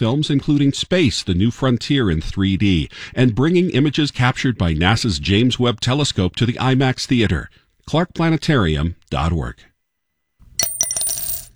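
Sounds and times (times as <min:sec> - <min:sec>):
speech: 0:00.0 - 0:09.7
quarter coin dropping into a jar: 0:10.5 - 0:11.5.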